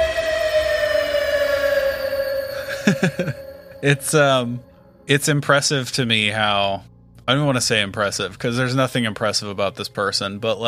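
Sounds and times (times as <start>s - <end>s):
loud steady high-pitched siren tone: 0.0s - 5.1s
speech: 2.9s - 10.6s.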